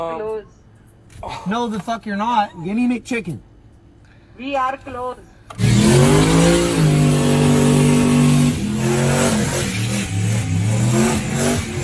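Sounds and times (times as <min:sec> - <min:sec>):
speech: 0:00.0 - 0:00.6, 0:01.2 - 0:03.5, 0:04.4 - 0:05.6
car engine revving hard while peeling out in a parking lot: 0:05.5 - 0:11.8.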